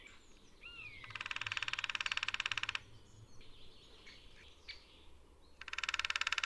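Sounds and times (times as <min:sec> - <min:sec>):
lesser spotted woodpecker drumming: 0:00.9 - 0:03.0, 0:05.6 - 0:06.4.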